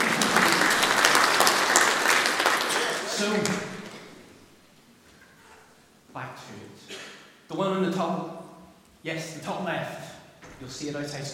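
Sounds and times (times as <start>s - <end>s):
room full of people applauding: 0.0s - 4.3s
speech: 7.6s - 8.3s, 9.0s - 10.0s, 10.6s - 11.3s.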